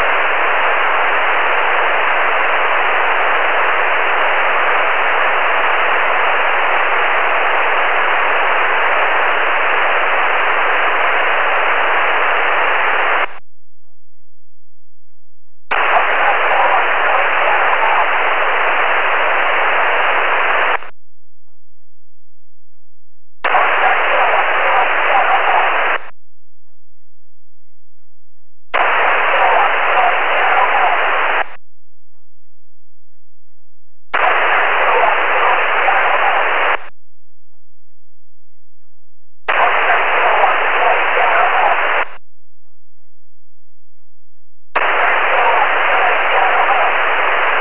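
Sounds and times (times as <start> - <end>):
SSB radio echoes: 0.0 - 13.4, 15.7 - 20.9, 23.4 - 26.1, 28.8 - 31.6, 34.1 - 36.9, 39.5 - 42.2, 44.8 - 47.5.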